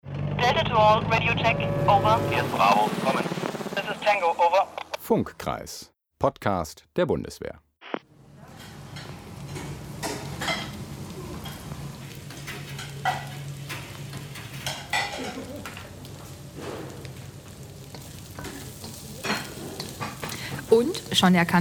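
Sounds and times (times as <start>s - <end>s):
speech: 0.5s - 7.6s, 20.7s - 21.6s
sizzling and frying in a canteen kitchen: 8.1s - 21.6s
dishes and pans clinking and clattering: 8.6s - 16.0s, 17.9s - 20.7s
metal utensils scraping and stirring: 11.4s - 15.9s, 17.8s - 21.1s.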